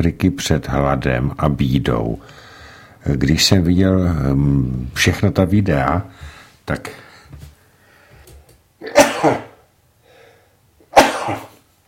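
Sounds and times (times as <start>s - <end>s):
speech: 0.0s - 2.4s, 3.0s - 7.1s, 8.8s - 9.5s, 11.3s - 11.5s
faint breaths: 2.2s - 3.0s, 6.1s - 8.5s, 10.0s - 10.6s
person sneezing loudly: 8.8s - 9.6s, 10.9s - 11.6s.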